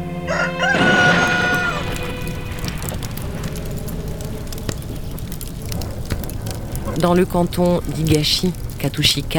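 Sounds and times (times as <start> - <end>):
rooster crowing: 0.0 - 3.0
crackling hissing noise: 0.0 - 9.3
speech: 7.0 - 9.3.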